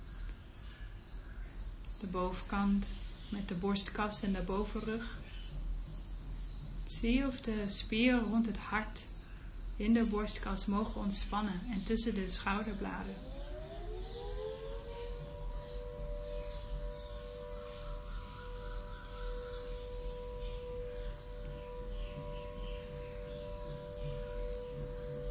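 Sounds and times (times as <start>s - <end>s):
bird chirps: 0.0s - 25.2s
speech: 2.0s - 5.3s, 6.9s - 9.1s, 9.8s - 13.4s
dam warning siren wailing on a river as a sluice is opened: 11.8s - 25.2s.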